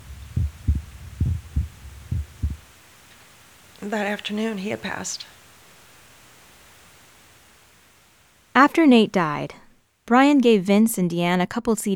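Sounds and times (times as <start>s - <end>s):
heartbeat thumping: 0.0s - 2.7s
speech: 3.8s - 5.3s, 8.6s - 11.9s.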